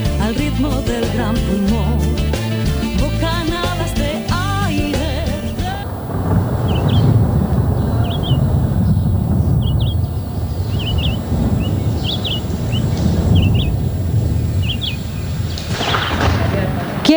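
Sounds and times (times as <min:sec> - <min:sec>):
music: 0:00.0 - 0:05.8
dense steady jungle ambience: 0:00.0 - 0:17.1
rainforest birds chirping in trees: 0:00.0 - 0:17.1
speech: 0:00.6 - 0:01.9.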